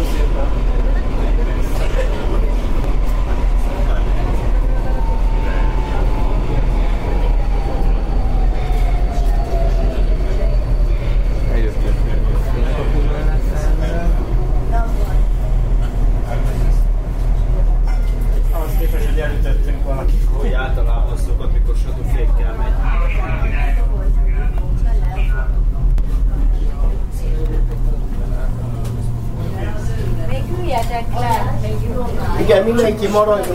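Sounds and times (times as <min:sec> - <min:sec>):
driverless automatic train rumbling heard from inside: 0:00.0 - 0:33.5
faint voices murmuring: 0:00.0 - 0:33.5
speech: 0:33.1 - 0:33.5.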